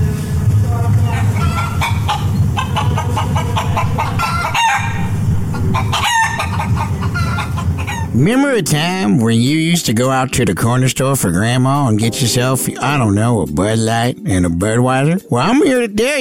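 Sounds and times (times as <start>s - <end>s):
frantic chicken clucking and screeching squawks as a transition effect: 0.7s - 8.2s
speech: 8.2s - 16.1s.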